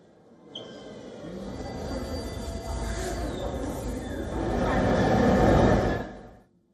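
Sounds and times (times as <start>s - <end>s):
metro train rumbling in an underground station in Kyiv: 2.1s - 6.4s.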